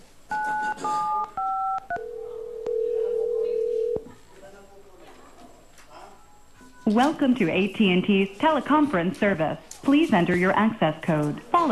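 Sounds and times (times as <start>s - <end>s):
telephone keypad DTMF tones: 0.3s - 4.0s
speech: 6.9s - 11.7s.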